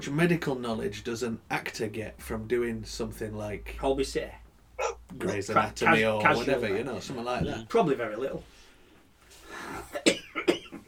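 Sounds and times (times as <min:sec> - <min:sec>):
speech: 0:00.0 - 0:04.4, 0:05.1 - 0:08.5
throaty rumble: 0:00.7 - 0:06.6
person coughing: 0:09.8 - 0:10.8.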